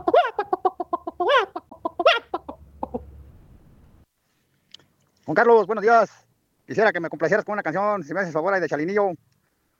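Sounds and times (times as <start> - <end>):
chicken clucking and squawking: 0.0 - 3.2
speech: 5.3 - 9.2.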